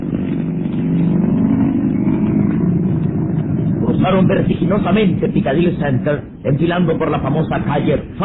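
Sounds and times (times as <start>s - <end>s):
modern car engine roaring while accelerating: 0.0s - 8.2s
speech: 4.1s - 8.2s.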